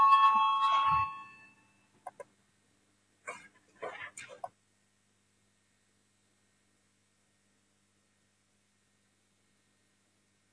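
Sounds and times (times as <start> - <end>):
loud electric voting bell ringing in a parliament: 0.0 - 1.7.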